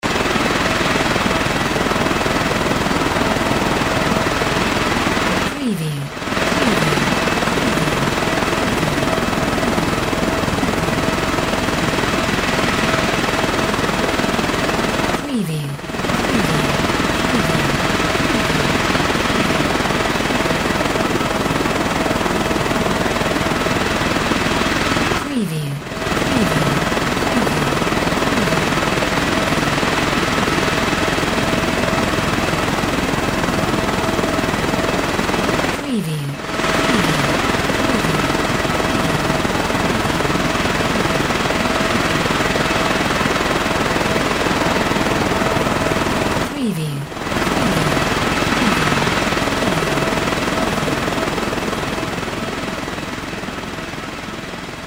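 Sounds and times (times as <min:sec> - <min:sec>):
helicopter over the sea: 0:00.0 - 0:54.8.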